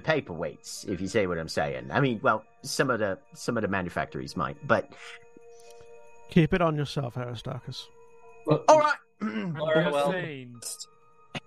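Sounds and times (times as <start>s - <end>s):
speech: 0.0s - 5.2s, 6.3s - 11.0s
person clearing throat: 9.2s - 9.7s.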